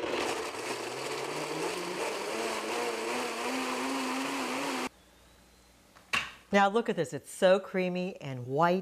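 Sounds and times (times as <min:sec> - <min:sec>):
high-speed blender pureeing cashews and water: 0:00.0 - 0:04.9
speech: 0:06.5 - 0:08.8.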